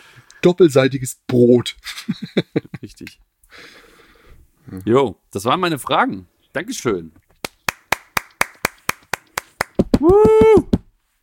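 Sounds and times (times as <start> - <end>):
speech: 0.4 - 3.8, 4.7 - 7.2, 10.0 - 10.7
hand claps: 7.4 - 10.9
person cheering: 9.9 - 10.8.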